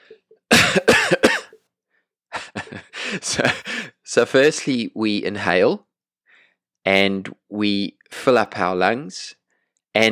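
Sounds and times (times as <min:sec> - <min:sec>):
person coughing deliberately: 0:00.5 - 0:01.6
speech: 0:03.1 - 0:05.9, 0:06.8 - 0:09.4, 0:10.0 - 0:10.1.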